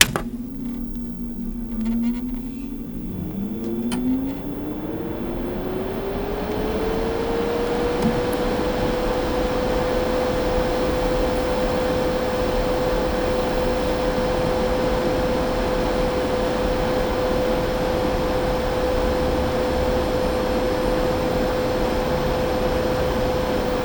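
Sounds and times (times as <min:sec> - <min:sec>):
printer starting and warming up: 0:00.0 - 0:23.8.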